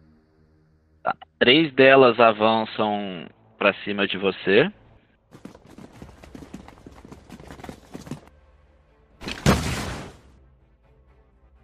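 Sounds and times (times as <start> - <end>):
speech: 1.0 - 4.8
horse hooves clip-clopping: 5.3 - 8.3.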